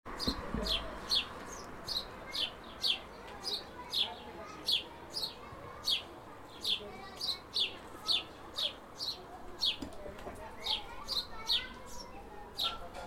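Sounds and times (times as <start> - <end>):
house sparrow Passer domesticus chirping: 0.1 - 13.0.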